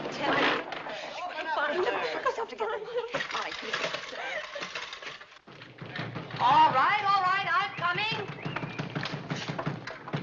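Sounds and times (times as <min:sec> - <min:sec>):
laughter: 0:00.8 - 0:05.2
person pounding on a locked door: 0:05.5 - 0:10.2.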